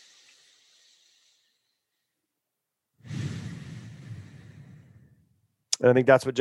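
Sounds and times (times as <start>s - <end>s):
deep breath in through the nose during a belly-breathing exercise: 0.0s - 1.7s, 3.0s - 5.3s
rough rush of air: 3.0s - 5.5s
speech: 5.8s - 6.3s.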